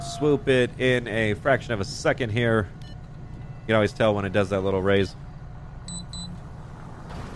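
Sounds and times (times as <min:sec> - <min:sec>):
speech: 0:00.2 - 0:02.8, 0:03.7 - 0:05.2
tow truck reversing beeps: 0:05.9 - 0:06.4.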